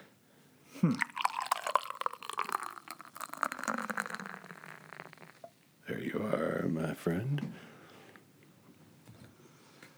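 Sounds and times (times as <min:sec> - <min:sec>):
speech: 0:00.8 - 0:01.1, 0:07.0 - 0:07.7
beer glugging and splashing into a glass: 0:00.9 - 0:05.5.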